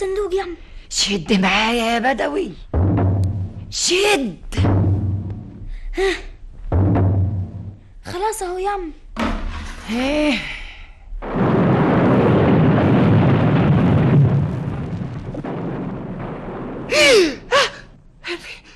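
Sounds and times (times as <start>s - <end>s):
speech: 0.0s - 2.7s, 3.7s - 4.7s, 6.0s - 6.3s, 8.0s - 9.0s, 9.9s - 10.6s
explosions rumbling: 2.5s - 8.0s, 11.1s - 18.2s.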